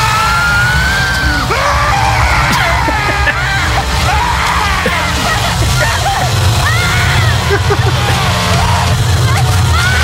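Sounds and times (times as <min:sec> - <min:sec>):
man screaming and yelling in a horror film scene: 0:00.0 - 0:08.9
rumbling background of commotion: 0:00.0 - 0:10.0
splashing: 0:00.0 - 0:10.0
laughter: 0:00.9 - 0:10.0
second voice crying out: 0:01.4 - 0:08.4.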